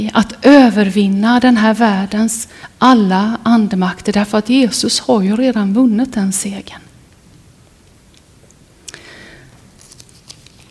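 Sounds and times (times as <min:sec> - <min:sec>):
speech: 0:00.0 - 0:06.9
faint light ticks and crinkles: 0:07.1 - 0:10.6
page of a book turning: 0:09.7 - 0:10.6.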